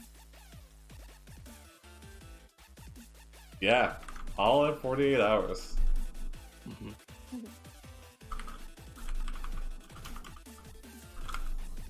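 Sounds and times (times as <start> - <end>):
speech: 3.6 - 5.8, 6.7 - 7.6
typing on a computer keyboard: 4.0 - 4.3, 8.3 - 11.7.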